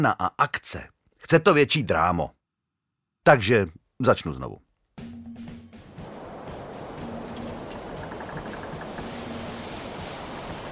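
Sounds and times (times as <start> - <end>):
speech: 0.0 - 2.4, 3.2 - 4.7
stormy sea waves surging and crashing: 5.8 - 10.7.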